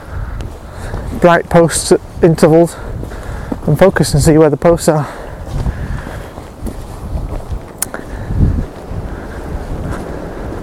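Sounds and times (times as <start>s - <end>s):
strong gusty wind buffeting the microphone outdoors: 0.0s - 10.6s
speech: 1.2s - 3.0s, 3.6s - 5.2s.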